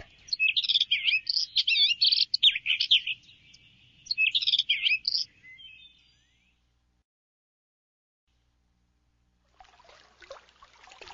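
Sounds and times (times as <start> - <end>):
birds chirping: 0.0 - 6.7.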